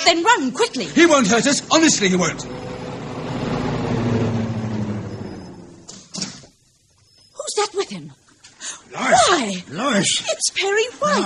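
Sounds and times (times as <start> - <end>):
speech: 0.0 - 2.7, 9.0 - 11.2
approaching car engine rumbling: 0.6 - 6.0
sharp clunks: 5.8 - 6.6.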